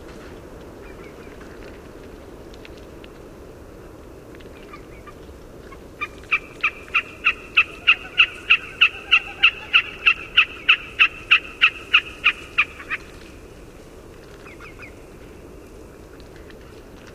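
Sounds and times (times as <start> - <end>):
background hiss: 0.0 - 16.7
Wilson's snipe calling in North America: 6.0 - 13.2.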